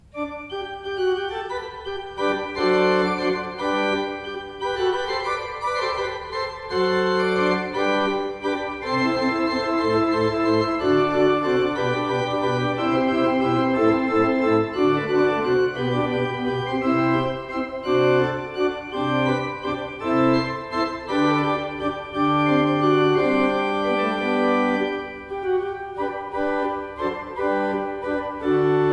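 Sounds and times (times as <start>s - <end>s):
pipe organ: 0.0s - 28.9s.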